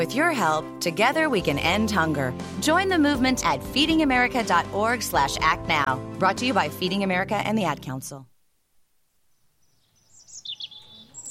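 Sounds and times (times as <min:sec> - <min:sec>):
speech: 0:00.0 - 0:08.3
birds chirping: 0:09.2 - 0:11.2.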